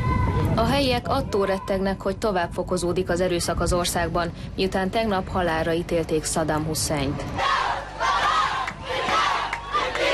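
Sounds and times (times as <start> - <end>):
speech: 0.6 - 7.6
large protest crowd chanting in unison in Tikrit: 7.3 - 10.1.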